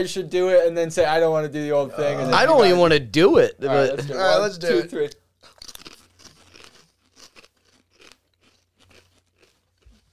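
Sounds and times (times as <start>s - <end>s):
speech: 0.0s - 5.2s
sour cream and onion potato chips being chewed: 5.4s - 10.1s.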